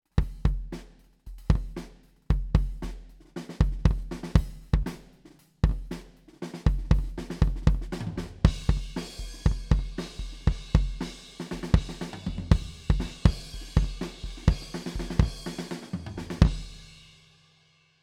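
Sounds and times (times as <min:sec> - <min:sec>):
kick drum recorded off the drum head: 0:00.2 - 0:05.0, 0:06.7 - 0:11.1, 0:11.8 - 0:15.5.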